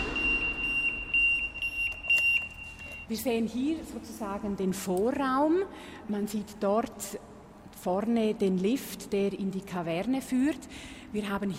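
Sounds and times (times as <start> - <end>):
electronic security alarm steady piercing high tone: 0.0 - 3.4
speech: 3.1 - 11.5.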